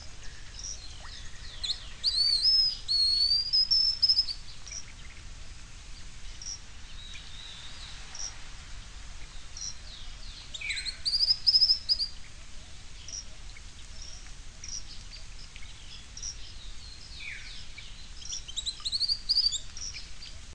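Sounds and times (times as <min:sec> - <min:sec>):
bird singing high rapid twittering phrases with sharp chirps: 0:00.0 - 0:05.3, 0:09.2 - 0:12.2, 0:13.0 - 0:20.3
steady background noise: 0:00.0 - 0:20.5.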